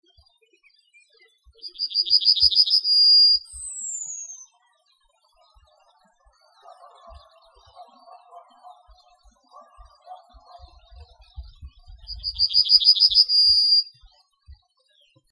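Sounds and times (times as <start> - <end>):
male yellowhammer singing: 1.6 - 4.6, 5.5 - 13.9.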